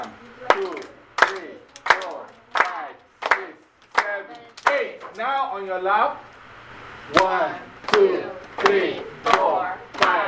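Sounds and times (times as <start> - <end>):
hand claps: 0.0 - 4.9, 7.1 - 10.2
speech: 5.6 - 6.3, 7.1 - 9.0.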